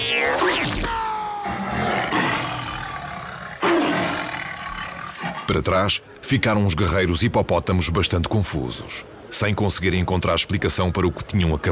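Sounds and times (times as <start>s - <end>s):
large tiger roaring: 0.0s - 5.7s
speech: 5.5s - 11.7s.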